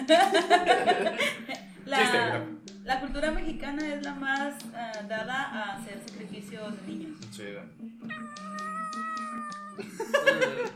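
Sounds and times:
laughter: 0.0 - 1.6, 9.8 - 10.7
speech: 0.1 - 2.5, 3.1 - 8.8
cat meowing: 8.0 - 9.8.

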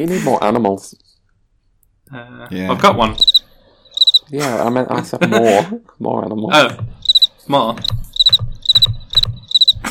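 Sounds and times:
speech: 0.0 - 1.1, 2.1 - 3.4, 4.3 - 8.0
cricket chirping: 3.2 - 4.3, 7.0 - 7.3, 8.1 - 9.8.

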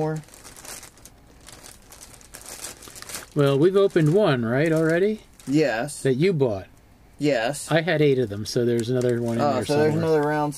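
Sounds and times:
speech: 0.0 - 0.4, 3.4 - 10.5
plastic bags holding bag clips crinkling while being rummaged through: 0.0 - 5.9, 8.6 - 9.5.

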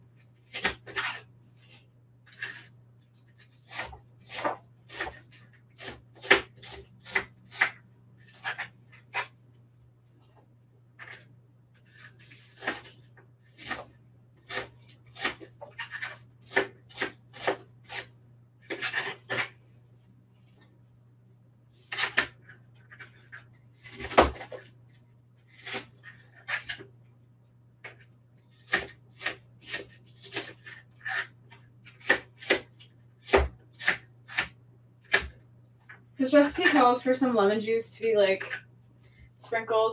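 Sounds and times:
low steady hum: 0.0 - 39.9
knife cutting an apple on a cutting board: 0.4 - 9.4, 11.0 - 19.6, 21.8 - 24.7, 25.4 - 26.9, 27.8 - 36.9
speech: 36.3 - 38.6, 39.5 - 39.9.

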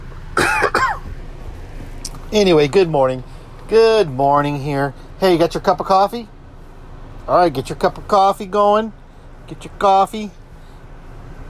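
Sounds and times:
person coughing: 0.4 - 1.1
speech: 2.3 - 6.3, 7.3 - 10.4.

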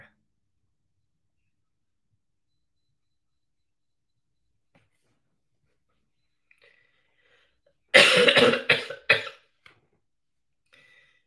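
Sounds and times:
faint trailing breath: 6.5 - 7.8, 10.7 - 11.2
person in a coughing fit: 7.9 - 9.5.

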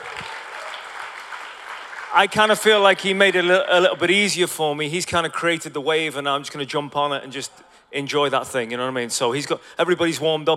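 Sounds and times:
crowd applauding: 0.0 - 3.6
speech: 2.1 - 10.5.

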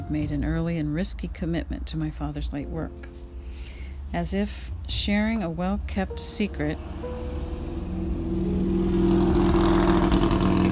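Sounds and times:
speech: 0.1 - 7.3
motorcycle engine revving past: 6.8 - 10.7.

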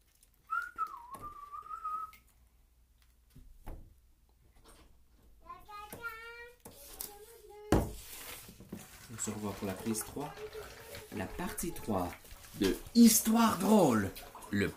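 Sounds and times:
person whistling a brief wavering tune: 0.5 - 2.2
speech: 9.2 - 14.7.

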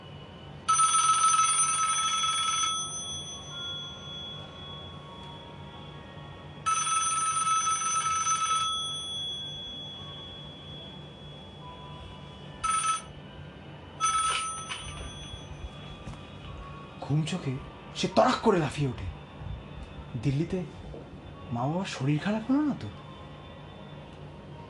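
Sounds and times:
electronic telephone ringing at night in a hall room: 0.6 - 5.8, 6.6 - 13.2, 14.0 - 15.8
speech: 17.1 - 19.2, 20.2 - 20.8, 21.5 - 23.0.

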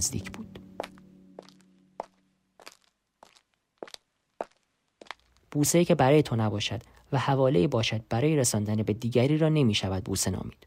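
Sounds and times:
low hum: 0.0 - 2.8
hard-soled footsteps walking away: 0.0 - 5.6
speech: 5.5 - 10.6.

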